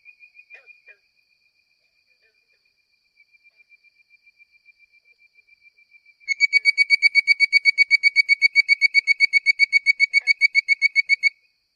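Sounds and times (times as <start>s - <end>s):
bird-voiced treefrog Hyla avivoca whistled call: 3.2s - 11.6s.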